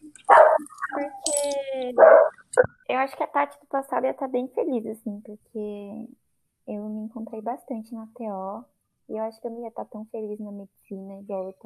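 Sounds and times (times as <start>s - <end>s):
dog barking, whining and yipping: 0.2s - 1.2s, 2.0s - 2.4s
speech: 3.1s - 11.6s.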